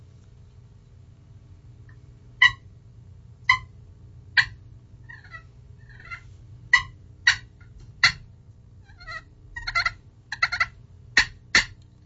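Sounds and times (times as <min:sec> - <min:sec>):
low hum: 0:00.0 - 0:12.0
slate friction call clucks imitating a turkey hen feeding: 0:02.4 - 0:02.7, 0:03.4 - 0:03.8, 0:04.4 - 0:11.8.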